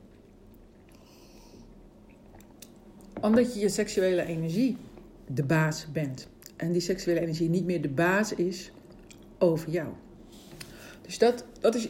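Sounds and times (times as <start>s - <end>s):
low steady hum: 0.0s - 11.8s
person sipping a drink with wet mouth and swallowing noises: 0.1s - 2.8s
speech: 3.2s - 8.8s, 9.4s - 10.1s, 11.1s - 11.8s.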